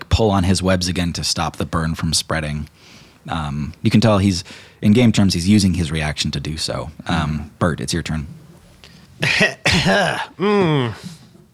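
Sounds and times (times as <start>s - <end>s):
speech: 0.2s - 8.4s, 9.2s - 11.2s
person coughing and hacking, acting out coughing up ash and smoke: 9.2s - 11.1s.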